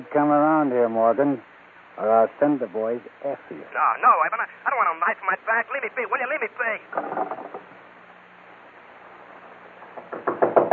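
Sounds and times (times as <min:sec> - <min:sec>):
speech: 0:00.0 - 0:07.7
people knocking on a door demanding it be opened: 0:10.0 - 0:10.7.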